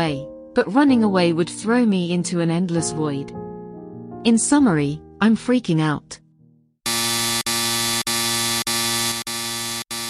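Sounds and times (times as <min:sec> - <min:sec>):
speech: 0:00.0 - 0:03.4, 0:04.2 - 0:06.2
house alarm siren blaring: 0:06.9 - 0:10.0.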